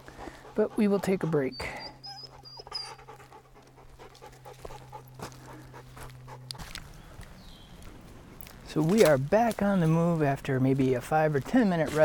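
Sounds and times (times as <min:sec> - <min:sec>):
dog panting on a hiking trail: 0:00.0 - 0:06.9
outdoor rustling: 0:00.0 - 0:12.0
speech: 0:00.6 - 0:01.8, 0:08.7 - 0:12.0
dog whining in high thin cries on a hiking trail: 0:01.2 - 0:03.4
footsteps at a clearing on a hiking trail: 0:02.2 - 0:12.0.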